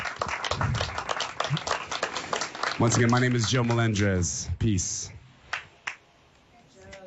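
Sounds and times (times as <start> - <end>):
crowd clapping to praise Jesus during worship: 0.0 - 4.1, 5.5 - 6.0
speech: 2.8 - 5.2.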